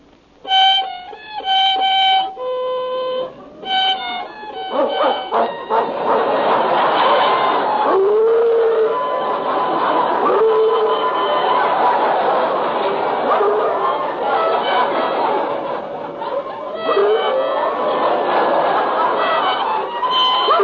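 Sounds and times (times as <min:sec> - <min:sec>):
noisy commotion: 0:00.4 - 0:20.6
laughter: 0:03.1 - 0:20.6
dog whining and yipping: 0:04.7 - 0:06.2, 0:16.9 - 0:17.4, 0:20.2 - 0:20.6.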